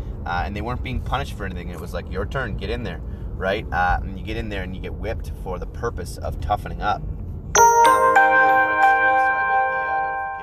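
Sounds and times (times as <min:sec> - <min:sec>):
speech: 0:00.2 - 0:08.0
notification chime: 0:07.6 - 0:10.4.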